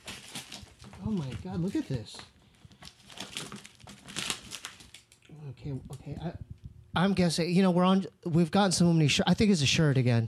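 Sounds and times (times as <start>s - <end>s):
packaging of a heavily taped package crinkling as it is unwrapped: 0.0s - 5.3s
speech: 1.0s - 2.4s, 5.4s - 10.2s.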